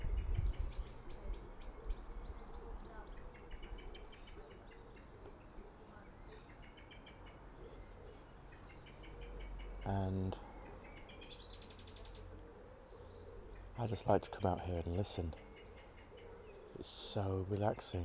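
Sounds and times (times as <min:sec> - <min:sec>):
noisy bird calling with chirping trills: 0:00.0 - 0:18.0
speech: 0:09.9 - 0:10.5, 0:13.8 - 0:15.4, 0:16.8 - 0:18.0.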